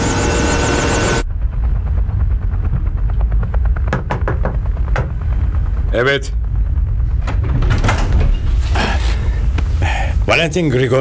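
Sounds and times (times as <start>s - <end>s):
rhythmic helicopter rotor thuds: 0.0s - 8.2s
just-repaired helicopter engine running: 0.0s - 10.3s
speech: 6.0s - 6.4s, 10.3s - 10.9s.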